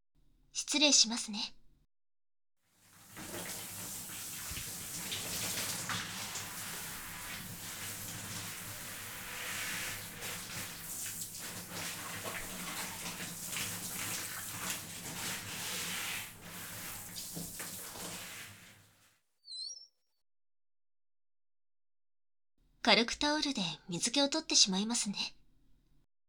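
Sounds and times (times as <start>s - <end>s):
speech: 0.6s - 1.6s, 22.9s - 25.4s
shower spray rinsing foam off hair: 2.8s - 19.0s
faint splash: 2.9s - 18.8s.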